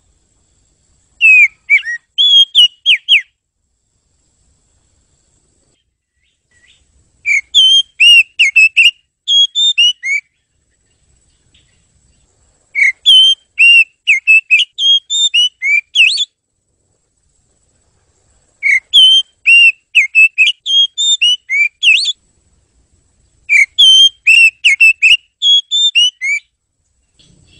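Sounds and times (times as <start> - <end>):
bird whistling bright pure notes: 1.2 - 3.3, 6.2 - 10.4, 12.7 - 16.3, 18.6 - 22.2, 23.5 - 26.5.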